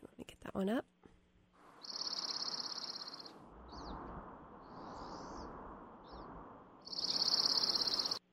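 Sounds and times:
speech: 0.5s - 1.0s
dark-eyed junco chattery song: 1.8s - 8.2s.

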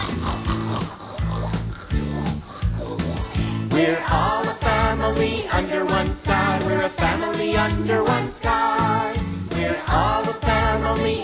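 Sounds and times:
voice imitating pig oinking grunts: 0.0s - 4.0s
busy musical backing: 0.0s - 11.2s
speech: 3.8s - 4.5s.

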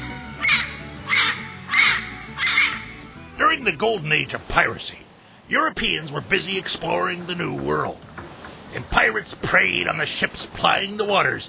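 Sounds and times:
parrot squawking harsh and raspy: 0.0s - 3.1s
speech: 3.6s - 8.1s, 8.7s - 11.4s.

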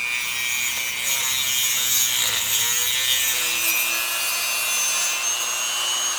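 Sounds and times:
diamond-covered drill bit cutting slices of bone: 0.1s - 6.1s.

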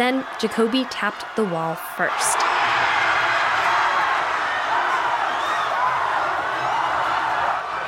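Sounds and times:
speech: 0.0s - 2.6s
large crowd cheering and shouting wildly: 0.0s - 7.8s.

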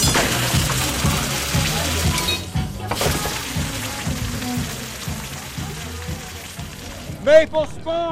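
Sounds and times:
hot metal shackle and pin sizzling in a shallow pool of water: 0.0s - 7.2s
speech: 7.3s - 8.1s.

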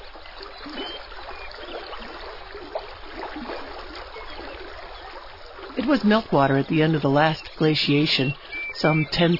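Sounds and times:
small splash: 0.0s - 6.4s
meandering river water babbling and trickling: 0.0s - 9.3s
speech: 5.8s - 9.3s.

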